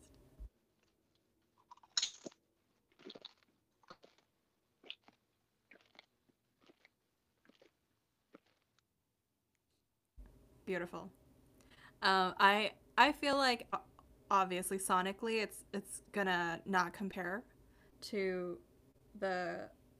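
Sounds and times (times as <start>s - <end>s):
cheddar and sour cream potato chips crunching: 1.6s - 8.8s
speech: 10.7s - 11.2s, 12.0s - 19.8s.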